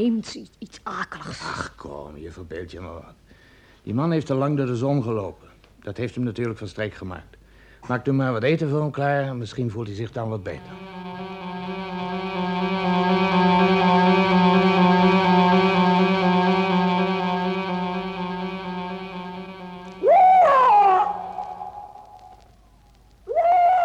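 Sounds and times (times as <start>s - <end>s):
speech: 0.0s - 3.2s, 3.8s - 11.1s
steady droning tone: 10.4s - 22.5s
owl screeching: 20.0s - 22.4s, 23.3s - 23.8s.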